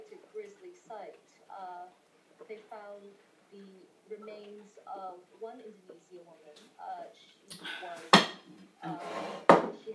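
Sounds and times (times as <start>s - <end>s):
speech: 2.4s - 9.9s
kettle scraping and rattling: 9.0s - 9.6s.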